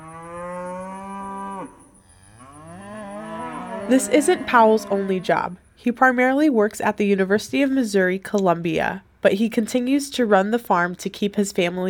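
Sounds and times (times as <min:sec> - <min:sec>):
cow mooing while cattle are herded on a farm: 0:00.0 - 0:05.5
speech: 0:03.9 - 0:11.8.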